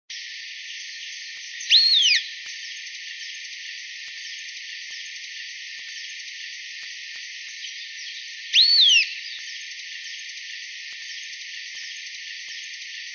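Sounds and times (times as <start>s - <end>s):
Long-tailed Tyrant Colonia colonus giving high whistled calls: 1.7s - 2.3s, 8.5s - 9.4s.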